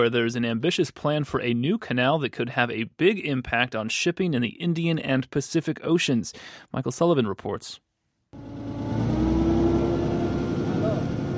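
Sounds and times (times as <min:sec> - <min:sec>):
speech: 0:00.0 - 0:09.0
small fishing boat engine droning on the Andaman Sea off Thailand: 0:08.4 - 0:11.3.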